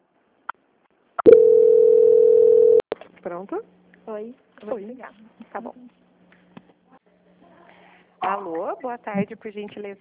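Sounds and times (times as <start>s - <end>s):
telephone call transfer tone: 1.2s - 2.8s
speech: 3.3s - 6.0s, 8.2s - 9.9s.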